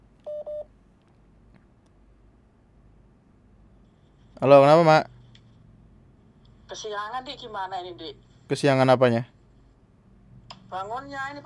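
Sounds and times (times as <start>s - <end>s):
faint noise: 0.0s - 11.4s
phone ringing with an incoming call in short electronic beeps: 0.3s - 0.7s
speech: 4.4s - 5.1s, 6.7s - 9.4s, 10.7s - 11.4s.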